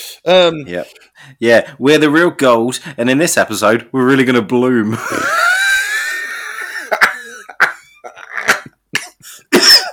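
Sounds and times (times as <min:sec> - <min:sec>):
speech: 0:00.2 - 0:05.4
person coughing: 0:06.9 - 0:09.9.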